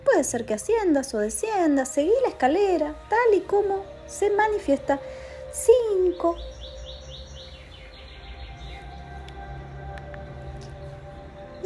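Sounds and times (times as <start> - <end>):
birds chirping and twittering in a forest: 0.0 - 11.6
steady low ambient hum: 0.0 - 11.6
speech: 0.2 - 6.6
rising bird calls: 5.0 - 11.6.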